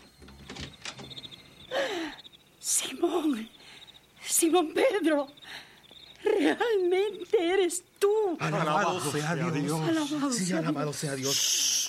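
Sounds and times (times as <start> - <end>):
door latch clunks: 0.0 - 1.4
door opening: 0.0 - 1.7
faint steady hum: 0.0 - 11.8
speech: 2.7 - 3.6, 4.4 - 5.4, 6.4 - 11.7.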